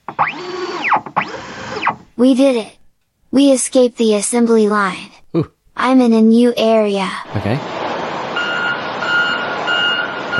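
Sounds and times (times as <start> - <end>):
speech: 2.2 - 7.8
rumbling noise: 6.4 - 10.3
electronic beeps from a truck backing up: 7.9 - 10.3.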